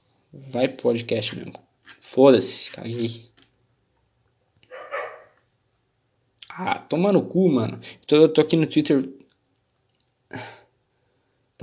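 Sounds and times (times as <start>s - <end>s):
quiet hum: 0.2s - 11.6s
speech: 0.3s - 3.3s, 6.6s - 9.2s, 10.3s - 10.6s
dogs barking: 4.7s - 5.4s.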